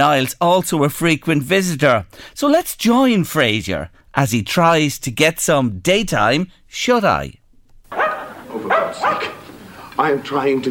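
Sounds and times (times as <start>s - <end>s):
speech: 0.0s - 7.4s, 10.0s - 10.6s
dog barking with a yelping harmonic tone: 7.9s - 9.5s.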